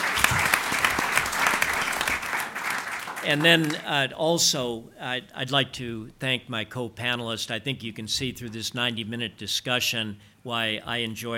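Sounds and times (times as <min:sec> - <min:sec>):
crowd applauding at a panel discussion at Stanford University: 0:00.0 - 0:04.0
speech: 0:03.2 - 0:11.3.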